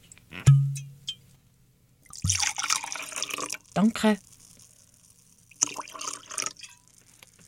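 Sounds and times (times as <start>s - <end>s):
glass clink: 0.5s - 1.2s
cloudy golden wine pouring into a glass: 2.0s - 3.8s, 4.4s - 7.0s
speech: 3.8s - 4.3s.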